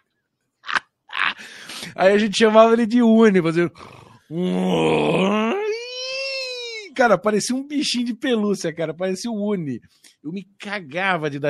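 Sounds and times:
laughter: 0.6 - 1.5
speech: 1.8 - 5.4, 7.0 - 11.4
person imitating a snore with rasping groan and wheezy squeak: 3.7 - 5.7.

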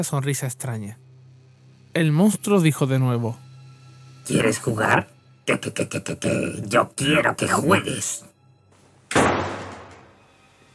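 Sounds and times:
speech: 0.0 - 1.1, 2.0 - 3.4, 4.3 - 8.3
door slamming shut: 9.1 - 10.2.

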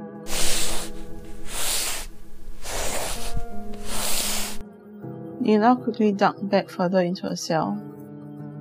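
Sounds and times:
body being dragged along the ground: 0.3 - 4.6
speech: 5.4 - 7.9.

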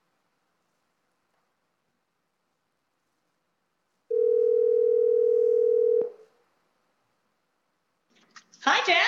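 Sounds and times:
smartwatch outgoing cellular call ringing tone: 4.1 - 6.2.

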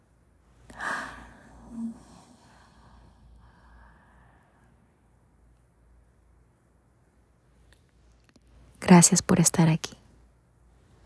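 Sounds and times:
deep exhale during a guided breathing exercise: 0.7 - 4.7
speech: 8.9 - 10.0.

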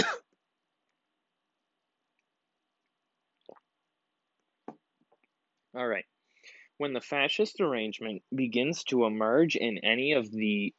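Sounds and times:
person drinking water with gulping swallows: 2.8 - 3.8
speech: 5.8 - 10.7.

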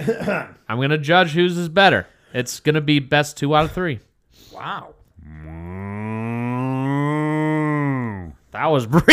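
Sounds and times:
speech: 0.0 - 5.8, 8.6 - 9.1
man imitating a cow moo in a mooing contest: 4.6 - 8.4.

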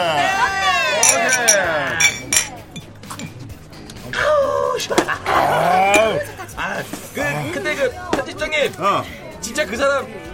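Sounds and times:
crowded chatter of reporters' voices in an editorial office: 0.0 - 10.3
glasses clinking in a toast: 1.0 - 3.4, 5.9 - 6.3
speech: 4.8 - 5.2, 7.7 - 10.3.

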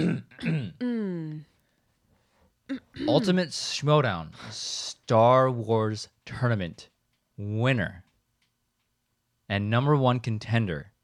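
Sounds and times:
speech: 0.0 - 0.9, 3.1 - 8.0, 9.5 - 10.9
throat clearing: 0.0 - 1.0, 2.7 - 3.3.

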